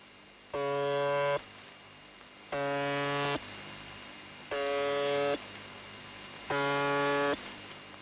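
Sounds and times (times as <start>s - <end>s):
hiss and hum of shortwave radio static: 0.5s - 1.5s, 2.5s - 3.5s, 4.4s - 7.9s
shortwave buzzer station signal: 0.5s - 1.5s, 2.5s - 3.4s, 4.4s - 5.5s, 6.4s - 7.5s.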